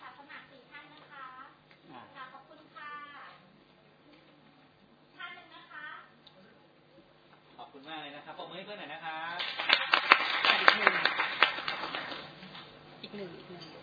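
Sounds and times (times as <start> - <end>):
audience applause for volunteers: 9.3 - 12.4.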